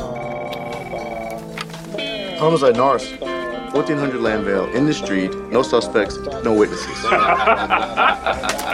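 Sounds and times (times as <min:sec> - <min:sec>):
telephone ringing: 0:00.0 - 0:02.7
speech: 0:02.4 - 0:08.7
laughter: 0:06.8 - 0:08.7.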